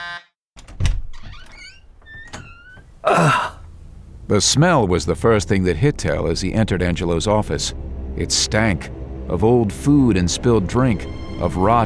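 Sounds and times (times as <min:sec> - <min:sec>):
door clunking open with a heavy thump: 0:00.6 - 0:03.1
speech: 0:04.3 - 0:11.8.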